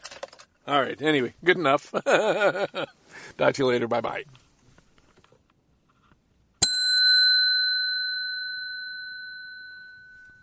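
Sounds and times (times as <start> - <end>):
speech: 0.7 - 4.4
laughter: 1.8 - 3.0
small chime bell ringing inside a Toyota car: 6.6 - 10.4.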